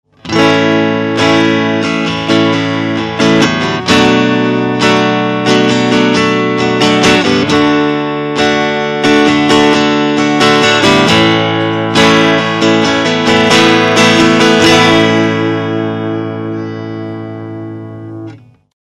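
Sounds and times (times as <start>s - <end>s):
Strat guitar through Fender Champion600: 0.0s - 18.7s.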